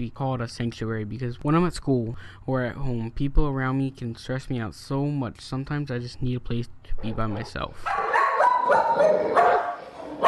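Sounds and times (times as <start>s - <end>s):
speech: 0.0s - 8.0s, 8.7s - 9.6s
pit bull and Sheltie barking: 7.4s - 10.2s
dog yips: 7.9s - 10.2s.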